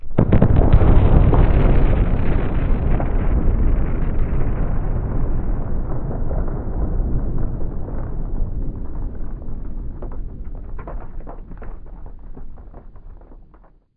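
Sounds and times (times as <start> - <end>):
nuclear explosion: 0.0 - 13.9.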